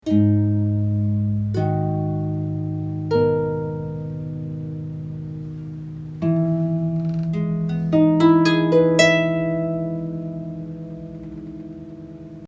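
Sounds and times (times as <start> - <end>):
dry harp: 0.0 - 12.4.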